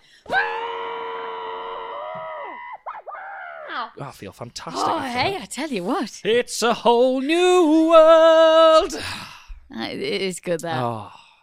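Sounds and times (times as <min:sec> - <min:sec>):
muffled scream into a pillow: 0:00.3 - 0:03.7
speech: 0:03.8 - 0:11.2.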